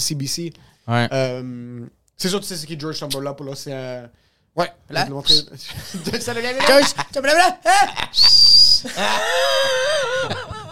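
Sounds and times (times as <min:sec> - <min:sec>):
speech: 0:00.0 - 0:10.4
laughter: 0:05.7 - 0:10.7
person whistling: 0:08.1 - 0:08.9.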